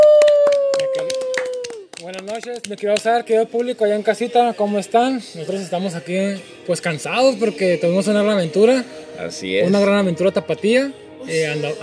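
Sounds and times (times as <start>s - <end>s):
audience clapping: 0.0s - 3.2s
speech: 2.4s - 11.8s.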